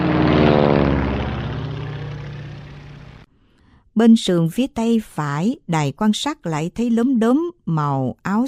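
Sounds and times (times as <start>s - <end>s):
military helicopter rotor and engine roar while landing troops: 0.0s - 3.3s
speech: 4.0s - 8.4s.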